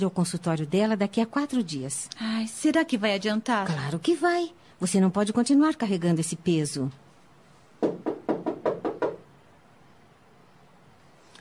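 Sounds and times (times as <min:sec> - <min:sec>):
speech: 0:00.0 - 0:07.0
firm knocks on a wooden door: 0:07.8 - 0:09.2.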